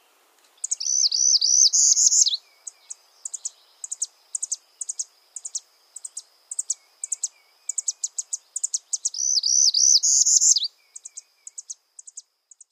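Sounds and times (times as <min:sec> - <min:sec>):
northern parula song, a rising buzzy trill: 0:00.7 - 0:02.4, 0:03.3 - 0:10.7.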